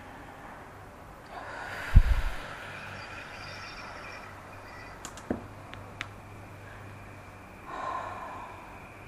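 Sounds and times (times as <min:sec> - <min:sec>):
deep breath during a guided relaxation exercise: 0:00.0 - 0:03.4, 0:07.6 - 0:08.9
small clicks: 0:05.0 - 0:06.2.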